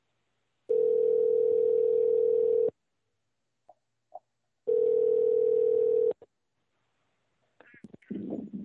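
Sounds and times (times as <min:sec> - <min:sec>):
telephone dial tone: 0:00.7 - 0:02.7, 0:04.7 - 0:06.2.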